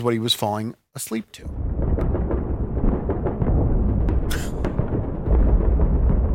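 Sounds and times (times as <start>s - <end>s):
speech: 0.0s - 1.6s
World War II battle explosions and booms played from a video on a phone: 1.5s - 6.3s
World War II battle gunshot crack played from a video on a phone: 1.6s - 6.3s.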